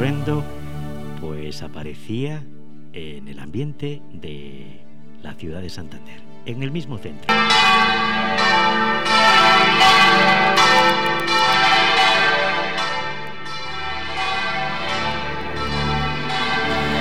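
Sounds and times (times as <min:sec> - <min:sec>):
speech: 0:00.0 - 0:00.6, 0:01.2 - 0:11.0
church bells pealing: 0:00.0 - 0:02.2, 0:07.3 - 0:17.0.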